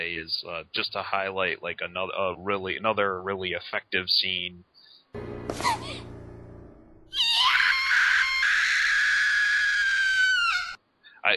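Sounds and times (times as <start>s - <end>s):
speech: 0.0s - 5.9s
young woman screaming in grief: 7.1s - 10.8s.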